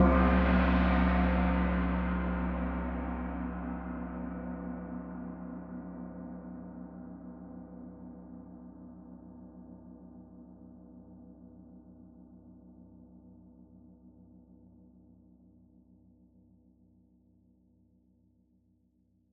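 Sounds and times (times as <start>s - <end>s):
low medium gong hit: 0.0s - 4.8s.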